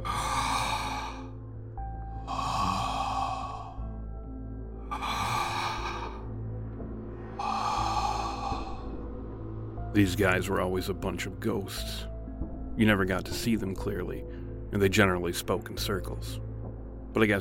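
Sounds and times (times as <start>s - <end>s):
hoarse heavy breathing behind a door: 0.0s - 6.5s, 7.1s - 9.2s
speech: 10.0s - 12.1s, 12.8s - 16.5s, 17.2s - 17.3s.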